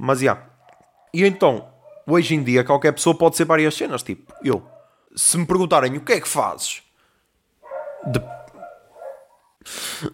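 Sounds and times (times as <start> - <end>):
speech: 0.0 - 0.5, 1.1 - 6.8, 8.0 - 8.4, 9.6 - 10.1
dogs barking: 0.5 - 2.3, 4.2 - 5.1, 7.6 - 9.6
dog whining or yelping: 0.6 - 2.1, 4.3 - 4.9, 7.6 - 9.5.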